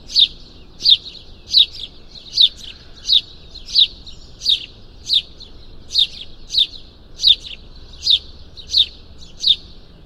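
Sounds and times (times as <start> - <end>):
house sparrow Passer domesticus chirping: 0.0 - 10.0.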